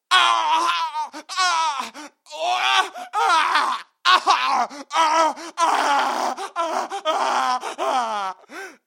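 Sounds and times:
wounded person screaming in pain: 0:00.1 - 0:08.8.

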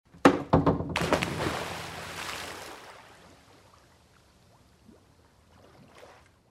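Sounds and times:
jump into water from a springboard: 0:00.9 - 0:03.5.

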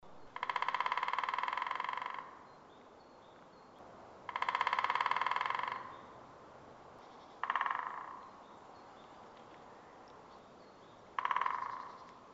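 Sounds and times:
woodpecker knocking: 0:00.2 - 0:02.5, 0:04.3 - 0:06.2, 0:07.4 - 0:08.4, 0:11.1 - 0:12.2.

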